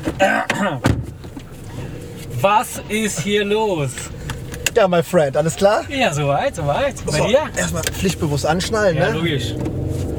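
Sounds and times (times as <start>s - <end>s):
car door shut with a solid low thump: 0.0s - 1.9s
car interior hum: 0.0s - 10.1s
speech: 0.2s - 1.0s, 2.4s - 4.2s, 4.8s - 9.8s.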